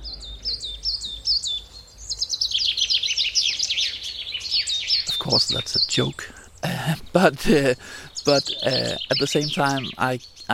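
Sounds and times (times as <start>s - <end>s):
birds chirping: 0.0s - 10.5s
speech: 5.3s - 10.5s.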